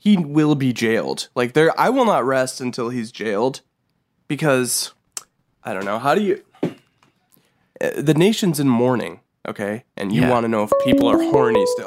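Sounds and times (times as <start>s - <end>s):
speech: 0.0s - 3.7s, 4.3s - 5.0s, 5.6s - 6.8s, 7.8s - 11.8s
phone electronic ringtone for an incoming call: 10.7s - 11.8s.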